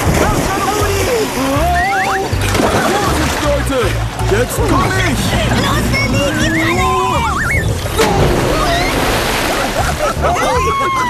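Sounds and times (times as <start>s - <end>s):
water splashing and sloshing out of a pool: 0.0s - 11.0s
laughter: 0.2s - 11.0s
squeaky tones: 1.4s - 9.3s
speech: 4.3s - 6.8s, 10.2s - 11.0s.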